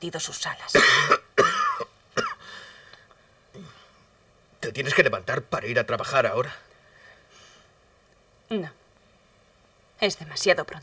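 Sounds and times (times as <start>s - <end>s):
speech: 0.0s - 1.2s, 4.7s - 6.7s, 8.5s - 8.8s, 10.0s - 10.8s
harsh hoarse coughing: 0.8s - 2.4s.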